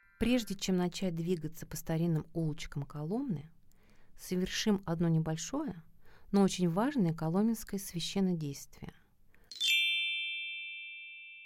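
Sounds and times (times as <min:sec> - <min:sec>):
speech: 0:00.2 - 0:03.6, 0:04.2 - 0:09.0
small handbell ringing: 0:09.5 - 0:11.4.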